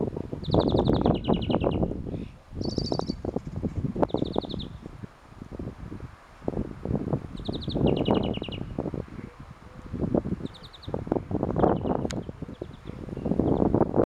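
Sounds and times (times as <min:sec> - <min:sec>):
European greenfinch Chloris chloris calling with short buzzy trills: 0:00.0 - 0:04.9, 0:07.2 - 0:13.9.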